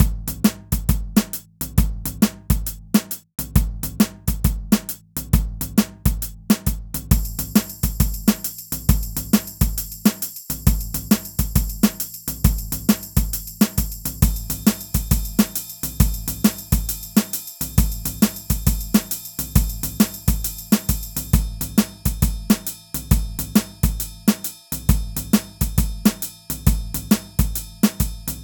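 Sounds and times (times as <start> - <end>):
jazzy beats loop: 0.0 - 28.4
percussion: 0.0 - 28.4.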